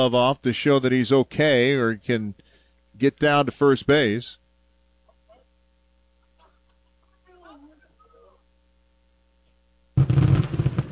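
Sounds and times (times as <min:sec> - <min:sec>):
speech: 0:00.0 - 0:02.4, 0:03.0 - 0:04.4
fireworks display booms and crackles: 0:10.0 - 0:10.9.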